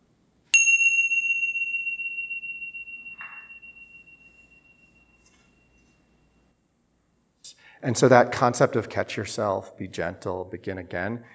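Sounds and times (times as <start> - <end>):
meditation bell ringing: 0.6 - 6.6
speech: 7.8 - 11.3.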